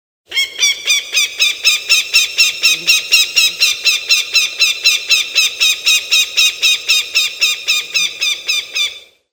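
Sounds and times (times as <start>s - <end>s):
falcon call: 0.3s - 9.1s.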